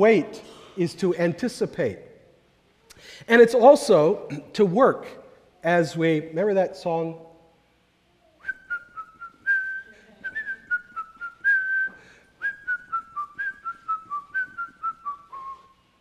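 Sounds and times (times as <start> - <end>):
speech: 0.0 - 2.0, 3.0 - 7.3
person whistling a bright bouncy melody: 8.4 - 15.8.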